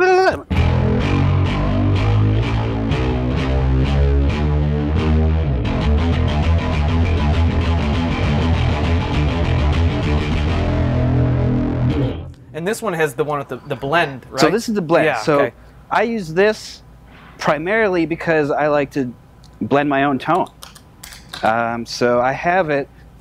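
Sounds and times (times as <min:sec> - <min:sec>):
bass guitar played through a chorus effect: 0:00.4 - 0:12.5
speech: 0:12.7 - 0:16.8, 0:17.4 - 0:23.1.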